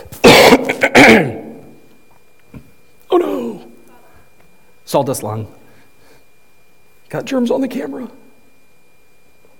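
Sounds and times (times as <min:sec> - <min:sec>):
person clearing throat: 0:00.1 - 0:01.7
speech: 0:01.0 - 0:01.4, 0:04.9 - 0:05.6, 0:07.1 - 0:08.2.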